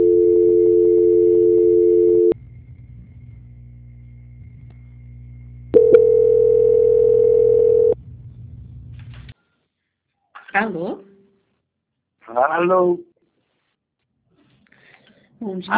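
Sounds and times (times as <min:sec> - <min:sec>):
telephone line tone while a call is transferred: 0:00.0 - 0:02.4, 0:05.8 - 0:08.0
loud even telephone line hum: 0:02.0 - 0:09.3
speech: 0:12.6 - 0:13.1, 0:15.4 - 0:15.7.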